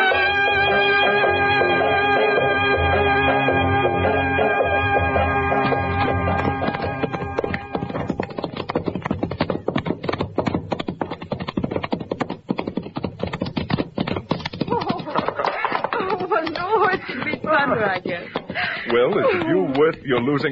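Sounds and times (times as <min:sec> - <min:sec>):
sorrel horse's hooves clip-clopping: 0:00.0 - 0:20.5
laughter: 0:14.6 - 0:20.0
person speaking: 0:16.1 - 0:20.5.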